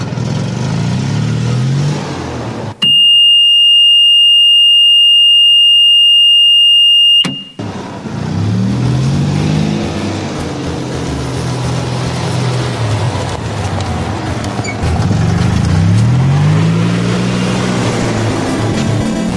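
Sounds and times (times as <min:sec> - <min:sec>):
golf cart engine running and revving: 0:00.0 - 0:01.0, 0:06.5 - 0:19.2
golf cart electronic reversing beep: 0:02.8 - 0:07.6.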